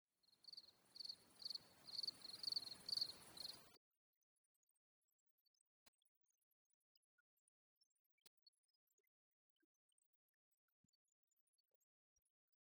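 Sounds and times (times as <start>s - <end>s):
crickets chirping in high shrill pulses: 0.4s - 3.7s.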